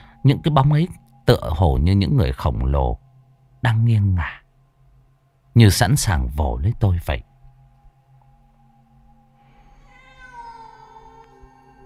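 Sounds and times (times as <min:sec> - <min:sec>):
low steady hum: 0:00.0 - 0:11.8
speech: 0:00.2 - 0:03.0, 0:03.6 - 0:04.4, 0:05.6 - 0:07.3
cat meowing: 0:09.6 - 0:11.8.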